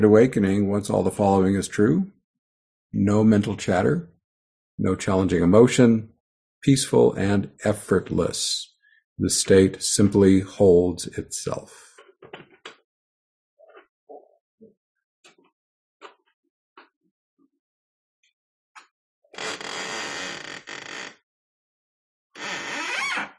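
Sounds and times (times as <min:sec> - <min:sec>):
speech: 0:00.0 - 0:02.2, 0:02.9 - 0:04.1, 0:04.8 - 0:12.5
creaky window being opened: 0:19.3 - 0:21.2, 0:22.4 - 0:23.3.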